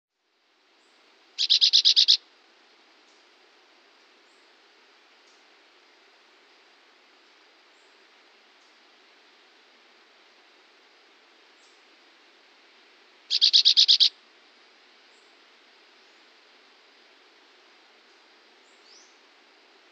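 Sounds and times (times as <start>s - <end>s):
long quiet hiss: 0.1s - 19.9s
chestnut-bellied euphonia calling with harsh metallic rattle: 1.4s - 2.2s, 13.3s - 14.1s.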